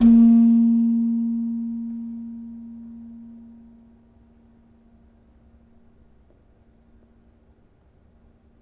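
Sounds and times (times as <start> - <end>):
gamelan slentem struck hard: 0.0 - 3.7.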